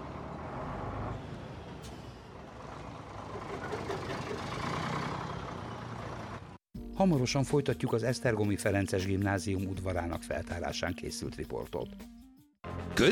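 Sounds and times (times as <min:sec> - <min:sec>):
heavy truck engine rumbling while turning beside an excavation in Esztergom, Hungary: 0:00.0 - 0:06.6
speech: 0:07.0 - 0:12.2.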